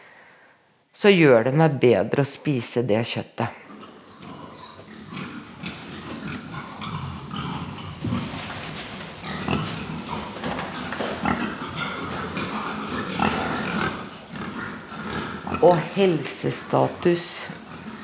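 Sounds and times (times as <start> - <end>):
speech: 1.0 - 3.6, 16.0 - 17.6
pigs grunting and snuffling outdoors: 3.4 - 18.0
pigs shuffling and rooting: 4.2 - 18.0.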